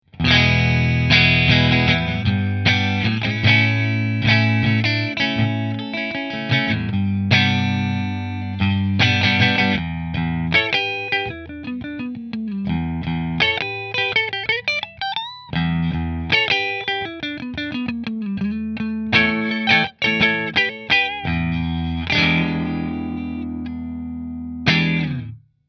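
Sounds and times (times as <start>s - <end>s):
Melancon Fender guitar in middle mini position 1: 0.0s - 25.5s.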